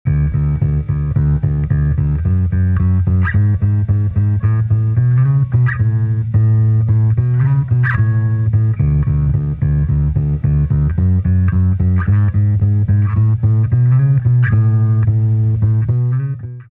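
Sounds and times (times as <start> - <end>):
electric bass: 0.0 - 16.7.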